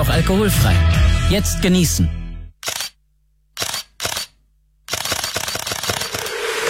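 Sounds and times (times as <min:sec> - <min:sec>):
speech: 0:00.1 - 0:02.2
camera shutter clicks and rapid burst of shutter firing: 0:02.6 - 0:03.0, 0:03.6 - 0:06.6.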